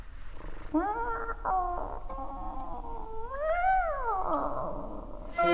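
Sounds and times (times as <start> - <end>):
opera singer imitating cat with sung meows: 0.7 - 5.4.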